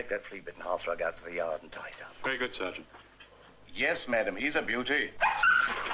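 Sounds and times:
speech: 0.0 - 3.1, 3.7 - 5.4
dog whimpering and whining: 5.2 - 5.8.

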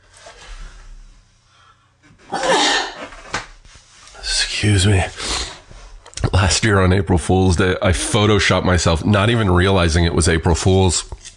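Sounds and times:
person sneezing: 2.3 - 3.1
speech: 4.7 - 5.2, 6.4 - 11.1.

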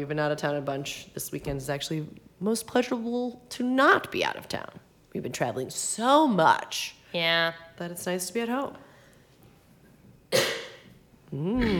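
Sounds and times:
speech: 0.0 - 8.9, 11.3 - 11.7
single sharp cough: 10.3 - 10.9.

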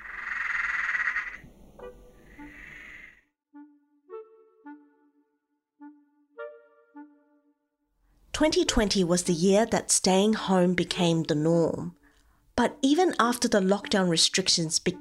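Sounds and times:
frogs croaking: 0.0 - 3.2
speech: 8.4 - 12.0, 12.6 - 14.9.

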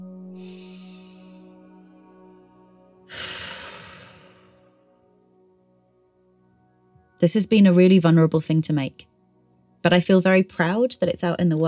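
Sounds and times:
deep breath: 0.4 - 1.6, 3.1 - 4.8
speech: 7.2 - 9.1, 9.8 - 11.6.

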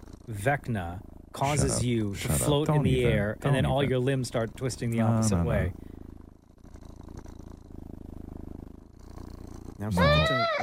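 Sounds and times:
recorded cat purring: 0.0 - 10.6
speech: 0.3 - 5.9, 9.8 - 10.6
recorded cat meowing: 9.8 - 10.6.

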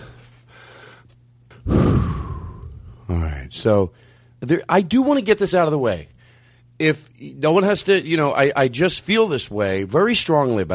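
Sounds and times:
person taking a deep breath: 0.0 - 3.0
speech: 3.4 - 6.2, 6.8 - 10.7.

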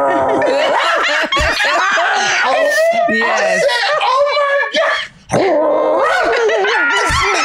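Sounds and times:
woman snickering laughter: 0.1 - 4.8, 6.0 - 7.4
woman imitating dog barking: 4.2 - 7.4.

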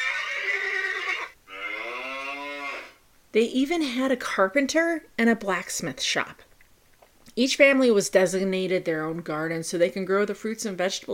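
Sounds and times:
horse whinnying: 0.0 - 3.0
speech: 3.3 - 6.5, 7.4 - 11.1.

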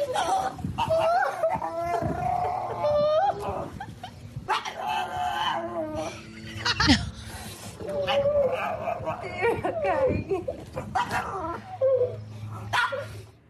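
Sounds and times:
dog making strange angry growly yowls whines and yips: 0.2 - 3.9, 4.5 - 6.3, 7.8 - 10.1, 10.7 - 13.2.

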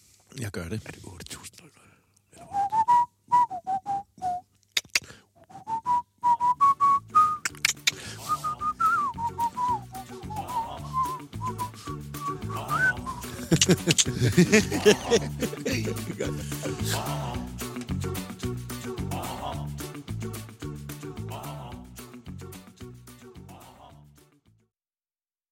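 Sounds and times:
speech: 0.3 - 2.6, 13.7 - 17.5
person whistling a melodic tune: 2.4 - 4.5, 5.4 - 14.5
laughter: 10.0 - 11.6, 12.3 - 17.6, 18.9 - 19.8, 23.5 - 24.0.

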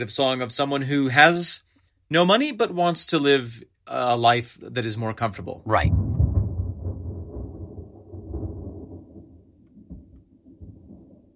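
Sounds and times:
speech: 0.0 - 6.2
rolling thunder: 5.6 - 11.3.

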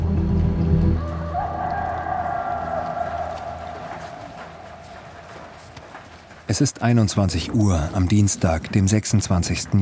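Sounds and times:
rooster crowing: 1.0 - 5.9
speech: 6.5 - 9.7.

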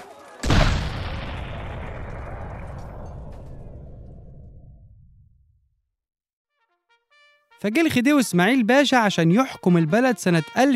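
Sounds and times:
cannon blast with rumbling boom: 0.4 - 5.6
speech: 7.6 - 10.7.

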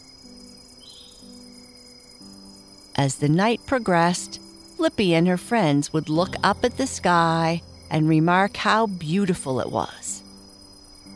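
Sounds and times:
crickets chirping at night at a campsite: 0.0 - 11.1
speech: 3.0 - 10.1.

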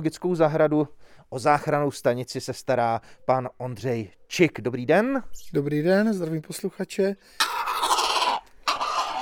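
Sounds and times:
speech: 0.0 - 7.6
rescued grey heron giving harsh rasping calls at a small zoo: 7.3 - 9.2.

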